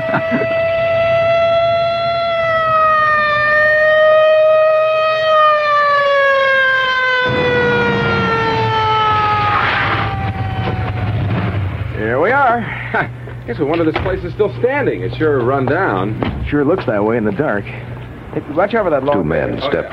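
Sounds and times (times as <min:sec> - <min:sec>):
police siren wailing on a police car: 0:00.0 - 0:11.9
speech: 0:00.1 - 0:00.6, 0:12.9 - 0:19.9
engine rumble of a police car hurtling along: 0:07.3 - 0:19.9.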